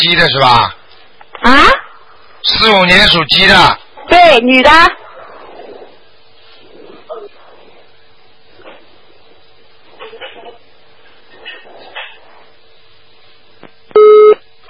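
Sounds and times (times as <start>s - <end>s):
speech: 0.1s - 0.8s, 1.4s - 1.8s, 2.4s - 5.0s
telephone busy tone after call disconnects: 14.0s - 14.6s.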